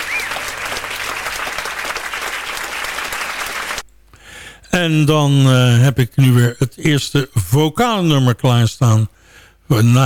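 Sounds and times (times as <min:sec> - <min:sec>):
faint whistle: 0:00.0 - 0:00.4
live audience applause for a jazz trio: 0:00.0 - 0:03.8
speech: 0:04.8 - 0:09.1, 0:09.7 - 0:10.0.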